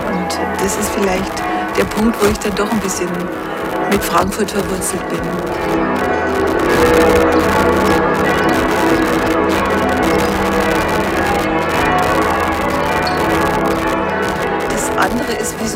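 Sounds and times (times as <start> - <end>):
deep resonant cathedral bell in Frankfurt tolling: 0.0 - 15.7
speech: 0.6 - 8.7, 15.0 - 15.7.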